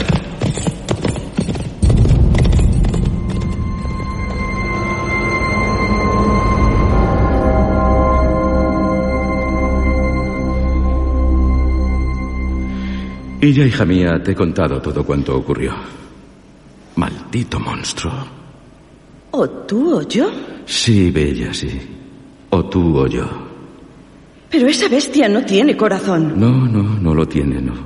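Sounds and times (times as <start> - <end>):
horse hooves clip-clopping: 0.0 - 4.4
droning tonal backdrop: 0.0 - 27.8
speech: 13.4 - 16.1, 17.3 - 18.4, 19.4 - 23.5, 24.5 - 27.8.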